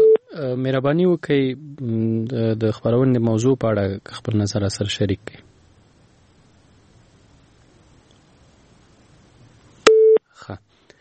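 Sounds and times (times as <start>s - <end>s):
telephone busy tone after a dropped call: 0.0s - 0.2s, 9.8s - 10.2s
speech: 0.4s - 5.5s, 10.5s - 10.7s.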